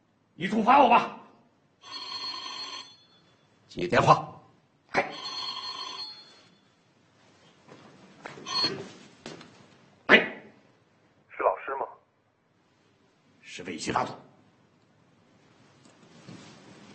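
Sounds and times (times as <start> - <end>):
speech: 0.4 - 1.2, 3.8 - 4.3, 5.0 - 5.3, 13.6 - 14.3
telephone ringing in bright buzzing bursts: 1.8 - 3.5, 5.0 - 6.8, 8.4 - 9.1.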